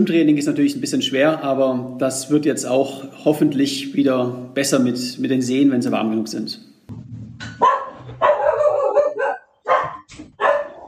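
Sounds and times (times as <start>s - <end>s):
speech: 0.0s - 6.7s
several dogs barking excitedly: 7.6s - 10.8s.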